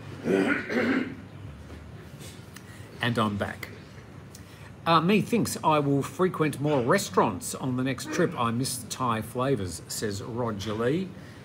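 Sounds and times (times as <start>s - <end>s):
person coughing: 0.2s - 1.2s, 8.0s - 8.5s
speech: 0.2s - 1.2s, 3.0s - 3.8s, 4.8s - 11.3s.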